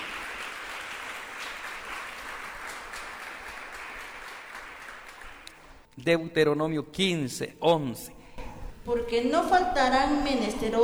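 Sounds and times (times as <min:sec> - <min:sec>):
audience applauding: 0:00.0 - 0:05.7
speech: 0:06.0 - 0:08.2, 0:08.8 - 0:10.8.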